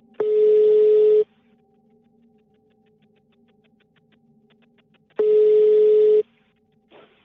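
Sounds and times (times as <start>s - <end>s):
mobile phone ringback tone heard through a handset: 0.2s - 1.3s, 5.2s - 6.2s.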